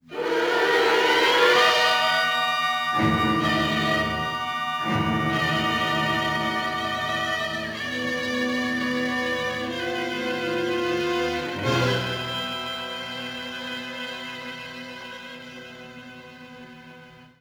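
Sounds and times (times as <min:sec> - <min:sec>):
suspense music: 0:00.7 - 0:16.4.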